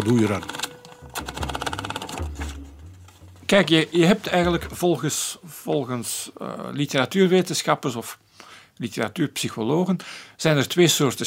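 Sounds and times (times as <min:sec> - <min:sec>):
speech: 0:00.0 - 0:00.6, 0:03.5 - 0:08.2, 0:08.8 - 0:11.2
typewriter typing: 0:00.0 - 0:02.6.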